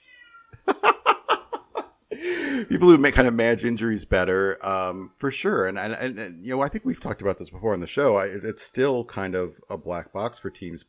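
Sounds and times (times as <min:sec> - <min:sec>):
cat going crazy meowing: 0:00.0 - 0:00.6
laughter: 0:00.6 - 0:02.6
speech: 0:02.1 - 0:10.8.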